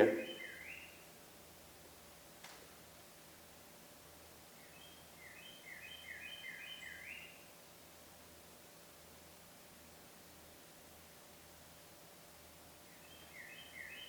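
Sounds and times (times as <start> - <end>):
bird singing faintly: 0.0 - 1.1, 4.6 - 7.4, 12.9 - 14.0
steady background hiss: 0.0 - 14.0.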